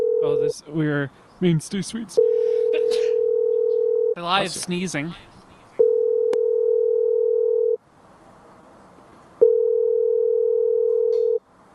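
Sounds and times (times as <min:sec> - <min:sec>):
telephone ringing tone while waiting for someone to pick up: 0:00.0 - 0:00.5, 0:02.2 - 0:04.2, 0:05.8 - 0:07.8, 0:09.4 - 0:11.4
speech: 0:00.2 - 0:03.1, 0:04.2 - 0:05.4.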